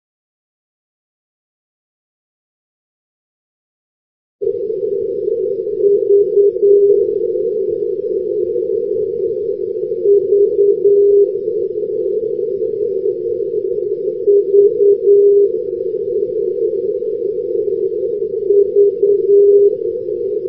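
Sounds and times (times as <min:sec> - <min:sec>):
non-directional radio beacon signal: 0:04.4 - 0:20.4.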